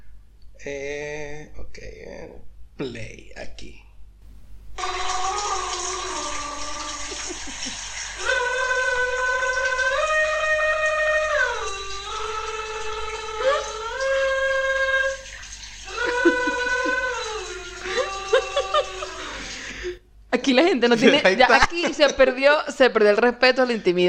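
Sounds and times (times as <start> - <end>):
speech: 0.6 - 3.8, 20.8 - 24.0
person vocalizing in sliding sing-song tones: 4.8 - 15.3, 15.9 - 20.0
shower water running: 4.8 - 19.9
person laughing: 5.8 - 9.0, 15.9 - 19.9, 21.0 - 22.4.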